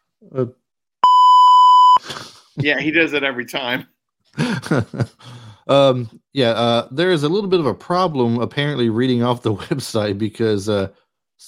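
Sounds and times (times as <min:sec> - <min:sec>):
speech: 0:00.2 - 0:00.6, 0:02.6 - 0:11.4
loud sustained electronic beep: 0:01.0 - 0:02.0
laughter: 0:04.4 - 0:05.9.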